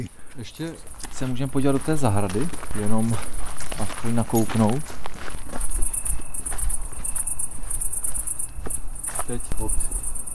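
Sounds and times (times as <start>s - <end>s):
speech: 0.0s - 5.0s, 9.3s - 9.9s
crickets chirping: 0.0s - 10.3s
footsteps coming down steps from a semicircular terrace into a terraced garden: 0.0s - 10.3s.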